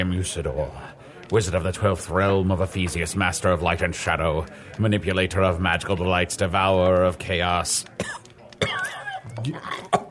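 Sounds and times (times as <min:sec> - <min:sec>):
speech: 0:00.0 - 0:08.2, 0:09.3 - 0:09.9
raspy cough: 0:08.0 - 0:10.0.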